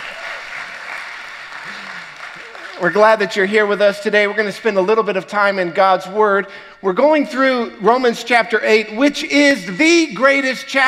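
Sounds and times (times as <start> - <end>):
audience applause: 0.0 - 3.9
speech: 2.8 - 10.8.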